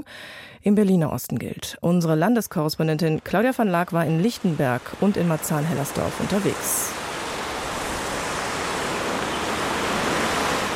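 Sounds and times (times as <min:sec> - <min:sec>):
speech: 0:00.0 - 0:07.0
fountain splashing in a city square in Berlin-Marzahn: 0:04.1 - 0:10.7.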